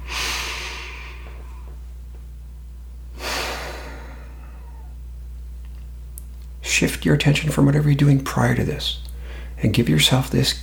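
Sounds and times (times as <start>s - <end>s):
deep breaths in a calm mindfulness moment: 0.0s - 1.8s, 3.1s - 5.0s, 9.1s - 9.6s
steady low hum: 0.0s - 10.6s
speech: 6.7s - 10.6s.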